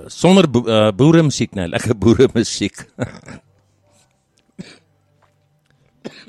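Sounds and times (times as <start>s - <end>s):
speech: 0.0s - 3.5s
short harsh coughs: 3.0s - 3.5s, 4.6s - 4.9s, 6.0s - 6.2s.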